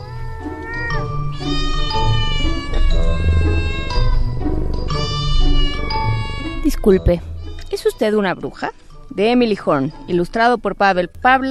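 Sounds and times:
cat meowing: 0.0s - 7.9s
speech: 6.8s - 7.3s, 7.9s - 11.4s.

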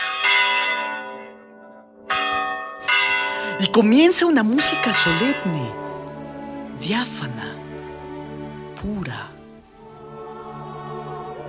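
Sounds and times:
church bells ringing: 0.0s - 7.6s
speech: 3.6s - 5.8s, 6.8s - 7.6s, 8.8s - 9.3s.

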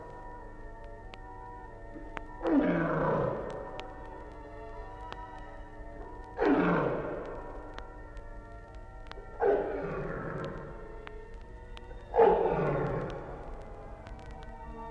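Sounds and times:
tiger roaring: 2.4s - 3.7s, 6.4s - 7.4s, 9.4s - 10.8s, 12.1s - 13.4s.

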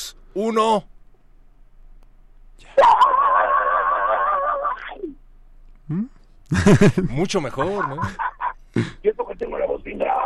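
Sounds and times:
speech: 0.4s - 0.9s, 5.9s - 10.2s
raspy heavy metal style vocal scream: 2.6s - 5.2s
person laughing: 2.8s - 5.0s, 5.9s - 9.0s.

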